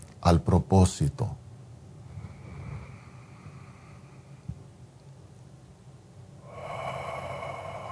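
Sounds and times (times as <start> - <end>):
speech: 0.2 - 1.4
slow deliberate conscious breathing: 2.0 - 4.6, 6.4 - 7.9.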